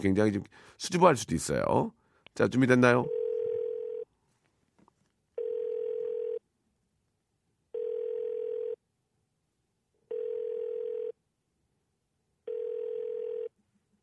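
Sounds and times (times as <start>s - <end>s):
speech: 0.0s - 3.2s
telephone ringback tone of call to a radio listener: 3.1s - 4.1s, 5.4s - 6.4s, 7.8s - 8.8s, 10.1s - 11.2s, 12.5s - 13.5s.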